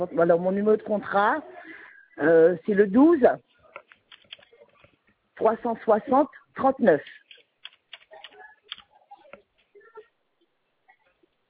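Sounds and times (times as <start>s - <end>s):
speech: 0.0s - 1.6s, 2.2s - 3.5s, 5.4s - 7.2s
typing on a computer keyboard: 3.7s - 4.9s, 7.0s - 8.9s.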